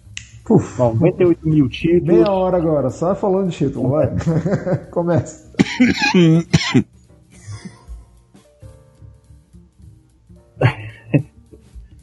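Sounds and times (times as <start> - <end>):
speech: 0.4 - 7.0
laughter: 3.8 - 6.6, 10.6 - 11.2
person coughing: 5.6 - 6.9, 10.6 - 11.3.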